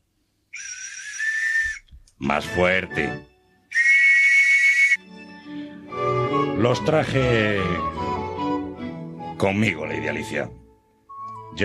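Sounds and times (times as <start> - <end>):
shrill breathy whistle blasts: 0.5 - 1.9, 3.7 - 5.1
speech: 2.2 - 3.3, 6.6 - 8.0, 9.4 - 10.6.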